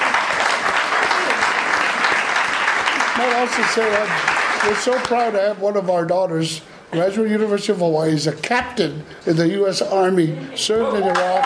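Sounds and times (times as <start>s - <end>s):
crowd of people applauding: 0.0s - 5.4s, 11.0s - 11.4s
speech: 3.2s - 11.4s.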